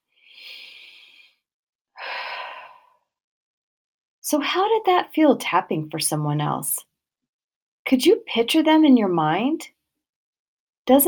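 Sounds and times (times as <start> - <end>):
deep breath in and out: 0.1 - 1.4, 2.0 - 3.1
speech: 4.2 - 6.9, 7.9 - 9.8, 10.9 - 11.0.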